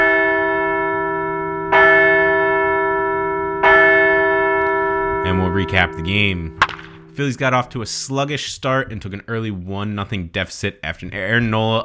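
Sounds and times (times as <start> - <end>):
large resonant bell ringing: 0.0 - 7.8
speech: 5.6 - 11.8.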